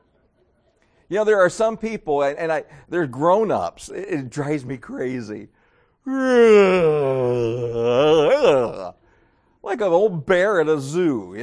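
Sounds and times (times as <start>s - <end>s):
speech: 1.1s - 9.0s, 9.6s - 11.4s
loud drawn-out vocal yawn with voiced groan: 6.1s - 9.0s.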